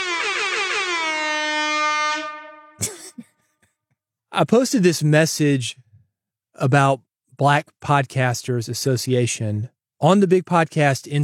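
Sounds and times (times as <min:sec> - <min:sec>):
brassy air horn blaring: 0:00.0 - 0:02.8
speech: 0:04.4 - 0:05.9, 0:06.6 - 0:11.2.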